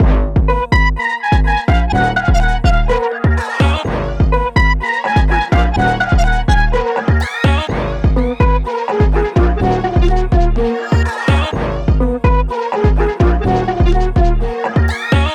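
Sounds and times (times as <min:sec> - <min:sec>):
melody loop: 0:00.0 - 0:15.3.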